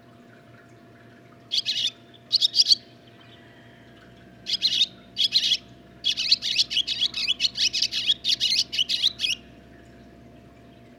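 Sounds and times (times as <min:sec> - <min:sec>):
barn swallow song of scratchy twittering and chirping: 0:01.5 - 0:03.4, 0:04.5 - 0:09.4.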